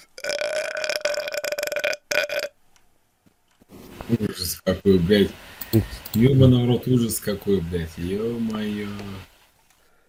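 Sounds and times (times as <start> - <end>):
person burping with a strong tonal buzz: 0.0 - 2.6
speech: 4.1 - 9.3.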